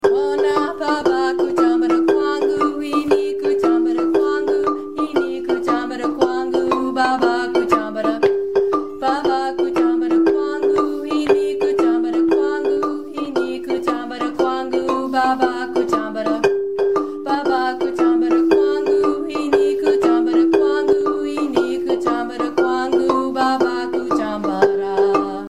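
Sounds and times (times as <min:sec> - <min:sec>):
marimba harmony line: 0:00.0 - 0:25.4.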